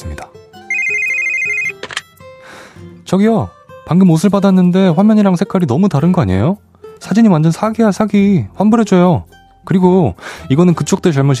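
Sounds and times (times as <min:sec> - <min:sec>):
telephone ringing: 0:00.7 - 0:02.0
speech: 0:03.1 - 0:11.3.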